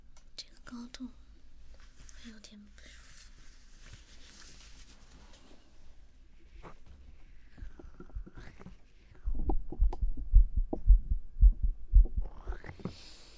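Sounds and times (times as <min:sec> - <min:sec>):
speech: 0:00.7 - 0:01.2, 0:02.2 - 0:03.0
heartbeat picked up by a microphone: 0:07.6 - 0:12.9.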